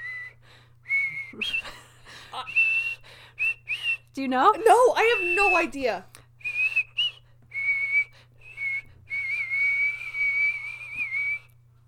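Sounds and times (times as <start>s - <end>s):
person whistling a slow wavering song melody: 0.0s - 1.8s, 2.4s - 4.1s, 6.4s - 11.6s
short breaths: 0.3s - 0.9s, 3.0s - 3.9s, 8.1s - 9.1s
speech: 4.2s - 6.1s.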